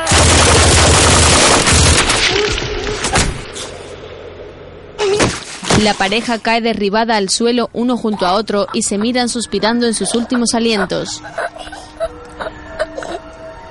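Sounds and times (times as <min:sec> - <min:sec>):
machine gun fire by soldiers in a film: 0:00.1 - 0:03.5
laughter: 0:02.2 - 0:03.3, 0:07.8 - 0:13.6
speech: 0:05.8 - 0:11.7.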